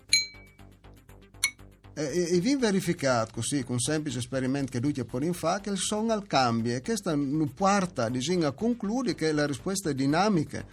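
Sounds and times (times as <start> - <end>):
bright ringing clink of an intact cup being tapped: 0.0 - 0.6
speech: 2.0 - 10.7.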